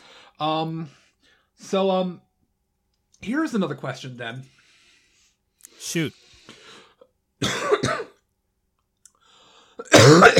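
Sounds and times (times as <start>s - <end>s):
faint breath: 0.0s - 1.6s, 4.5s - 7.1s, 9.2s - 9.8s
speech: 0.4s - 1.0s, 1.6s - 2.3s, 3.2s - 4.6s, 5.8s - 6.3s
person coughing: 7.4s - 8.2s, 9.8s - 10.3s.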